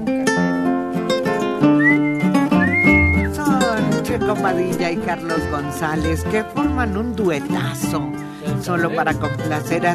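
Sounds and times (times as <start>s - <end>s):
steady full instrumental music: 0.0s - 9.9s
postman's shrill whistle blowing: 1.8s - 3.4s
speech: 4.3s - 9.9s.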